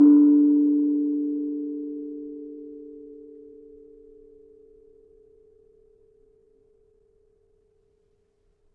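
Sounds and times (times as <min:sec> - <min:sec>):
kenong gong tuned to D: 0:00.0 - 0:07.0.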